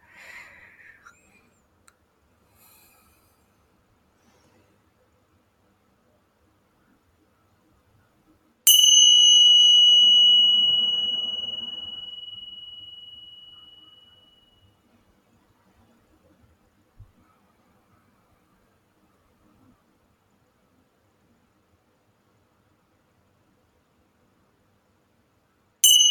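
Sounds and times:
single bell struck once ringing: 8.7 - 14.3, 25.8 - 26.0.

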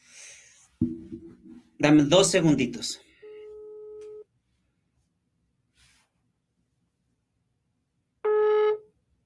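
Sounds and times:
speech: 1.8 - 3.1
telephone line tone beeps while a call is redialed: 3.2 - 4.2, 8.3 - 8.8.

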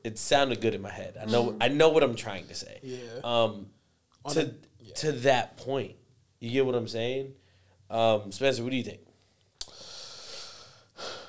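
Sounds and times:
speech: 0.0 - 9.1
man breathing audibly: 7.4 - 7.8, 9.6 - 11.2.

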